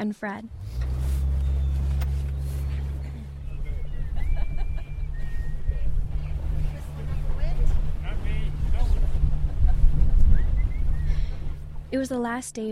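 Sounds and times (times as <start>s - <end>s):
speech: 0.0s - 0.8s, 11.9s - 12.7s
wind buffeting the microphone: 0.5s - 12.0s
small fishing boat motor droning across water: 0.5s - 12.7s
laughter: 2.7s - 7.4s, 8.1s - 11.4s.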